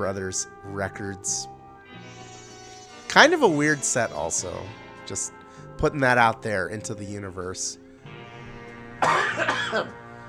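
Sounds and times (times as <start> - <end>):
speech: 0.0 - 2.2, 3.1 - 7.8, 9.7 - 10.0
person coughing: 9.0 - 9.9.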